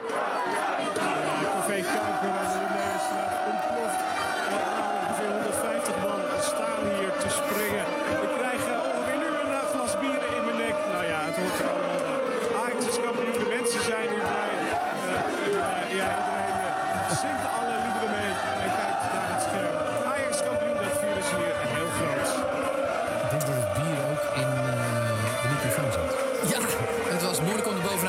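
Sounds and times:
large crowd of football fans cheering and shouting in the street: 0:00.0 - 0:28.0.

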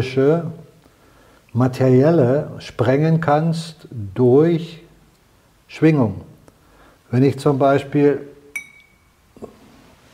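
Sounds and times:
speech: 0:00.0 - 0:00.6, 0:01.5 - 0:04.8, 0:05.7 - 0:06.3, 0:07.1 - 0:08.3
struck glass ringing: 0:08.5 - 0:09.3.

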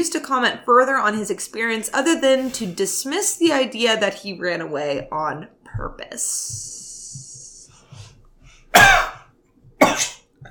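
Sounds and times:
speech: 0:00.0 - 0:06.8
staged harsh coughs: 0:08.7 - 0:10.4.

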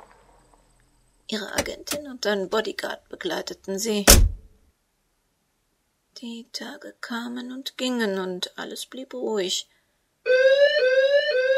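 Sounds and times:
speech: 0:01.3 - 0:04.3, 0:06.2 - 0:10.7
loud steady electronic burglar alarm tone blaring: 0:10.3 - 0:11.5.

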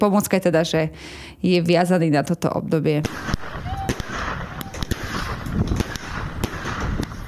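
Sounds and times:
speech: 0:00.0 - 0:03.6
New Year's Eve fireworks bangs: 0:03.0 - 0:07.2.

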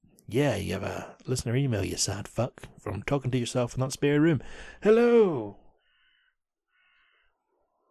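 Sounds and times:
speech: 0:00.3 - 0:05.6
crow cawing: 0:05.8 - 0:07.4.

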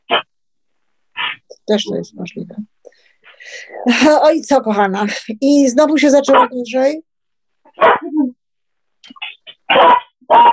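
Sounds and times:
speech: 0:01.7 - 0:02.8, 0:03.4 - 0:07.1, 0:07.8 - 0:08.0
dog barking: 0:07.7 - 0:08.1, 0:09.7 - 0:10.5.

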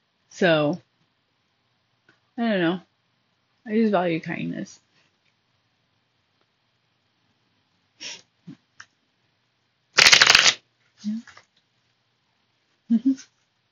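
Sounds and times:
speech: 0:00.4 - 0:00.9, 0:02.4 - 0:02.9, 0:03.6 - 0:04.8, 0:08.0 - 0:08.6, 0:11.0 - 0:11.4, 0:12.9 - 0:13.3
deck of cards riffle shuffle: 0:10.0 - 0:10.6.

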